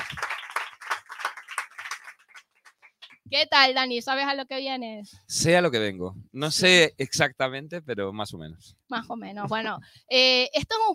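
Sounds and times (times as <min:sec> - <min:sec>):
studio audience clapping and applauding for a guest: 0:00.0 - 0:03.3
speech: 0:03.3 - 0:10.9.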